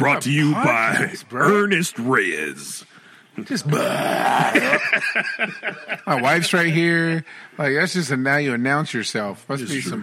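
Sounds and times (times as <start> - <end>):
speech: 0.0 - 10.0
loud drawn-out low-pitched burp: 3.7 - 4.8
laughter: 3.7 - 7.1.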